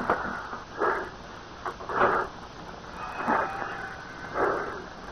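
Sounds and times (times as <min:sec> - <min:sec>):
person breathing deeply from a handkerchief carrying an odor: 0:00.2 - 0:01.2, 0:01.8 - 0:05.1.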